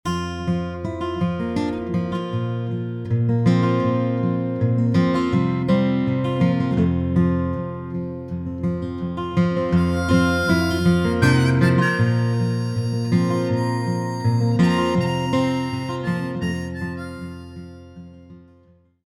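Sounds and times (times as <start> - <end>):
guitar: 0.0 - 19.0
harmonica: 9.3 - 18.7.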